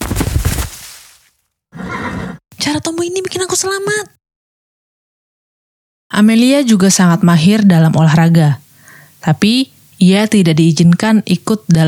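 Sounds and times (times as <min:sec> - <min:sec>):
horse neighing: 0:01.8 - 0:02.4
speech: 0:02.7 - 0:04.2, 0:06.1 - 0:08.6, 0:09.2 - 0:11.8.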